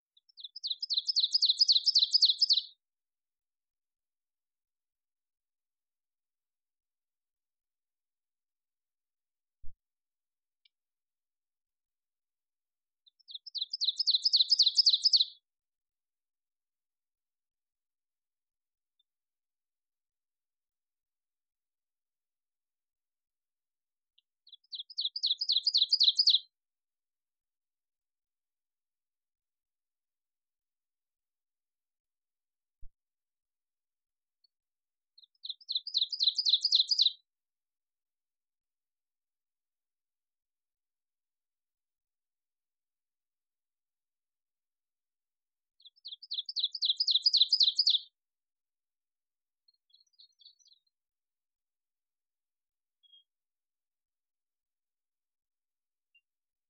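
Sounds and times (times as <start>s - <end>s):
ovenbird singing: 0.2s - 2.8s, 13.0s - 15.4s, 24.4s - 26.5s, 35.2s - 37.2s, 45.8s - 48.2s, 49.6s - 51.0s.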